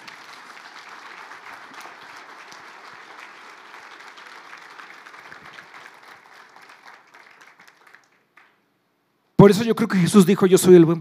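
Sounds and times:
audience applauding: 0.0s - 8.6s
speech: 9.4s - 10.9s.

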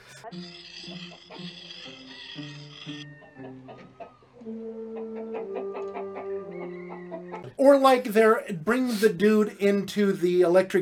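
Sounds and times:
musical backing of sustained shifting tones: 0.0s - 7.4s
chicken clucking: 0.0s - 7.6s
speech: 0.3s - 5.6s, 7.6s - 10.7s.

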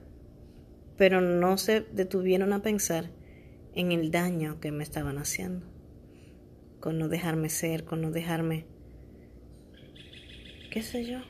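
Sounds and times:
low rumble: 0.0s - 11.2s
speech: 1.0s - 3.2s, 3.8s - 5.7s, 6.8s - 8.7s, 10.8s - 11.2s
birds chirping: 9.6s - 11.2s.

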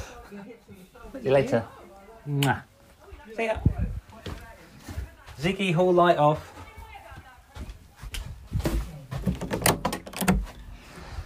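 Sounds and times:
shuffling: 0.0s - 9.6s
speech: 0.3s - 2.7s, 3.3s - 4.0s, 5.4s - 6.6s
front door opening and closing: 9.2s - 10.8s
front door latch and frame clunks and rattles: 9.3s - 10.6s.

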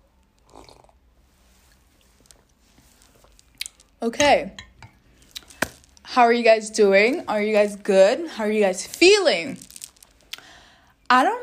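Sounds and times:
soft wet mouth sounds: 0.4s - 1.0s
person sipping grape juice: 0.4s - 4.0s, 5.0s - 5.6s
speech: 4.0s - 4.7s, 6.2s - 9.7s, 11.1s - 11.4s.

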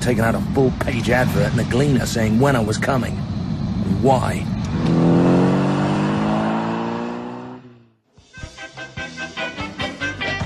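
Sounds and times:
speech: 0.0s - 4.9s
taxi engine droning and revving: 0.2s - 8.0s.

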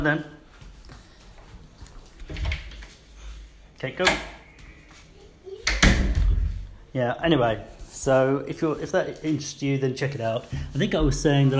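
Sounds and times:
speech: 0.0s - 0.4s, 3.8s - 4.3s, 6.9s - 11.5s
door being pulled open: 2.2s - 2.9s, 5.6s - 6.6s
door slamming shut with a heavy thud: 5.6s - 6.6s.

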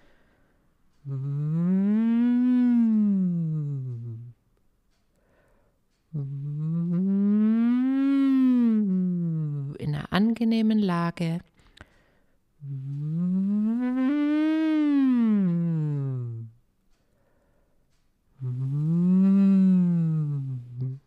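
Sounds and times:
short breath: 0.0s - 0.7s, 5.2s - 5.8s, 11.6s - 12.4s, 17.0s - 17.9s
speech: 1.0s - 1.4s, 10.2s - 11.5s
voice siren glides hummed through a drinking straw: 1.0s - 4.4s, 6.1s - 9.8s, 12.6s - 16.6s, 18.4s - 21.0s.

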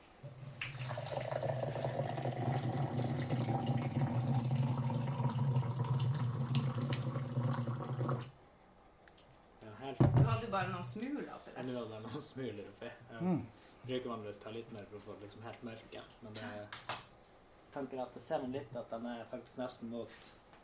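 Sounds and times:
hot water pouring over crowberries in a cup: 0.2s - 8.3s
speech: 10.5s - 16.9s, 17.8s - 20.4s.

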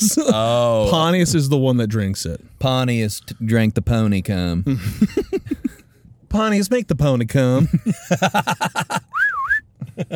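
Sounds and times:
speech: 0.0s - 5.6s, 6.3s - 9.0s
laughter: 4.7s - 5.8s, 7.6s - 10.1s
person whistling to call a horse: 9.1s - 9.6s.

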